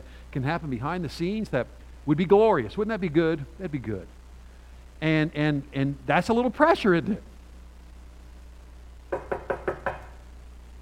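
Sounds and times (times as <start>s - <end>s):
speech: 0.4s - 4.2s, 5.0s - 7.3s
firm loud knocking on a door: 9.1s - 10.2s.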